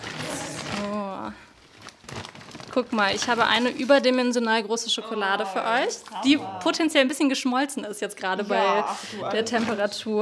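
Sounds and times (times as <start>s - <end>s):
rummaging through a big plastic shopping bag: 0.0s - 4.6s, 9.4s - 10.2s
speech: 2.8s - 10.2s.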